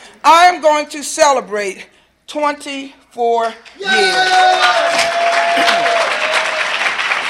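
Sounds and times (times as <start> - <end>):
speech: 0.2 - 6.0
audience clapping at a speaking event: 3.9 - 7.2.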